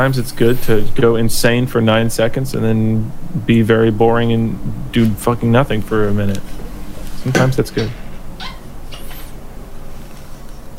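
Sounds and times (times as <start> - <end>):
speech: 0.0 - 6.6, 7.2 - 8.0
low hum: 0.0 - 10.7
water bottle cap squeaking as it is twisted open: 7.3 - 9.4.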